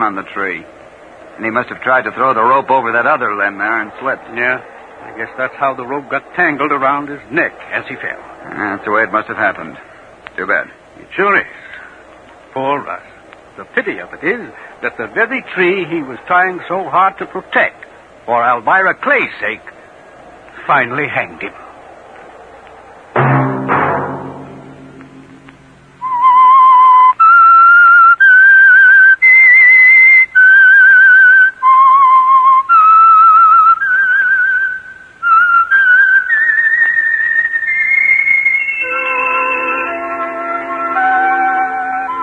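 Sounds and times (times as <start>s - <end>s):
speech: 0.0s - 0.8s, 1.4s - 11.6s, 12.5s - 19.8s, 20.7s - 21.6s
short low thump: 23.1s - 26.0s
fuller chord of tones: 23.2s - 27.1s, 38.6s - 42.2s
whistled theme melody: 26.0s - 42.2s.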